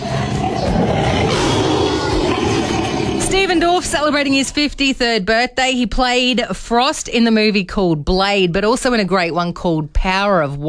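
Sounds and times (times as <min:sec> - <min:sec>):
tiger roaring: 0:00.0 - 0:04.0
speech: 0:03.5 - 0:10.6.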